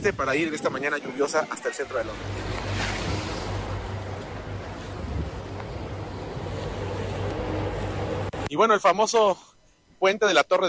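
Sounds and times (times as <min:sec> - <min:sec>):
speech: 0:00.0 - 0:02.6, 0:08.5 - 0:10.6
wind noise: 0:00.0 - 0:08.4
tourist boat engine droning on the River Thames in London: 0:00.0 - 0:08.5
rushing river water: 0:00.3 - 0:08.4.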